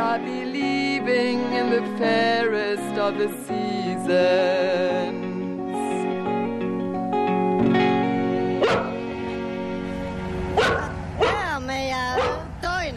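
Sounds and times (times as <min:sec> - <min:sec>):
steady bed of music: 0:00.0 - 0:12.9
speech: 0:00.2 - 0:05.2
dog barking and yelping: 0:08.6 - 0:09.0, 0:10.6 - 0:11.5, 0:12.1 - 0:12.5.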